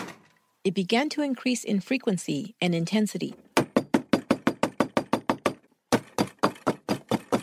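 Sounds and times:
speech: 0.6 - 3.5
knocking on the front door of a farmhouse: 3.6 - 7.4.

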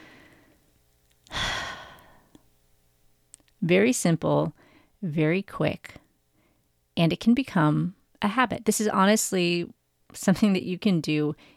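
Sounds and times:
slow deep breath taken while relaxing: 0.0 - 0.6, 1.3 - 2.4, 4.6 - 5.0
speech: 3.7 - 6.0, 7.0 - 11.5.

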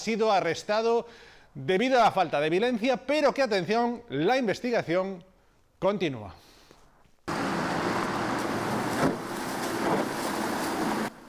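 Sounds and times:
speech: 0.0 - 6.5
car rolling over a road: 7.3 - 11.2
car wheel striking a pothole: 7.7 - 11.1.

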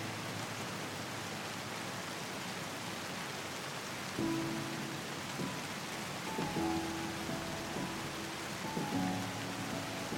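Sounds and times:
rain: 0.0 - 10.1
soothing music: 4.2 - 10.1.

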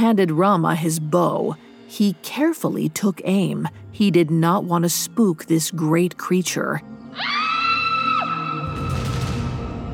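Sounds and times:
speech: 0.0 - 7.6
high-pitched scream in a forest from the river: 7.1 - 9.2.

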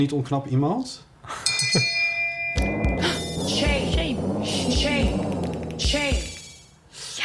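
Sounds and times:
speech: 0.0 - 2.0
steady high electronic alarm beeping tones: 2.6 - 6.7.

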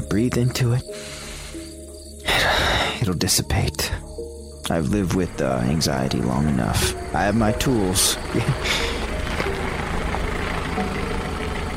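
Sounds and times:
speech: 0.1 - 1.2, 2.4 - 4.0, 4.7 - 9.0
car engine rumbling with a steady low drone: 5.2 - 11.7
broad road noise: 6.0 - 11.7.

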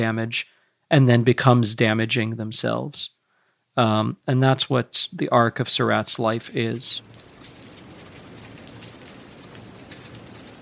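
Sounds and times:
speech: 0.0 - 3.2, 3.8 - 7.5
soft rain on tent fabric: 6.5 - 10.6.

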